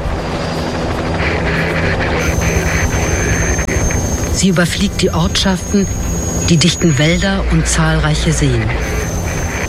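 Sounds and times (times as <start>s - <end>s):
squadron helicopter taking off for a search: 0.0s - 9.6s
speech: 4.4s - 9.0s.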